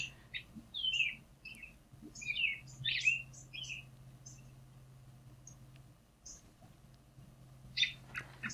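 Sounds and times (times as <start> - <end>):
American robin chirping calls: 0.0 - 4.7, 5.4 - 6.6, 7.7 - 8.5
low steady hum: 0.0 - 8.5.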